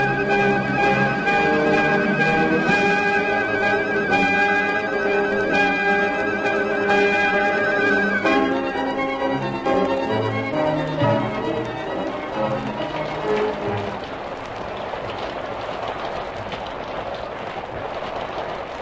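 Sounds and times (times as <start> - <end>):
layered tonal musical sound: 0.0 - 14.1
heavy tropical storm rain: 0.0 - 18.8.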